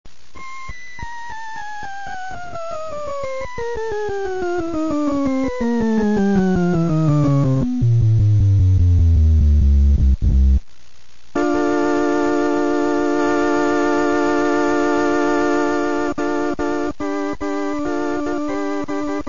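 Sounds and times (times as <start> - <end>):
Gem organ: 0.4 - 10.3, 11.4 - 19.2.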